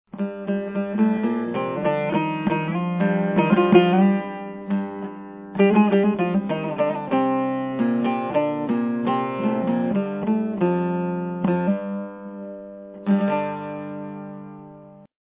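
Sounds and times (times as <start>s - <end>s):
chogur: 0.1s - 12.1s.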